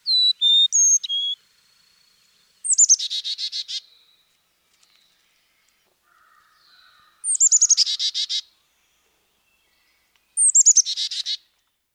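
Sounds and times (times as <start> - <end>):
Carolina chickadee chick-a-dee calls: 0.0 - 1.4, 2.6 - 3.8, 6.2 - 8.5, 10.4 - 11.4.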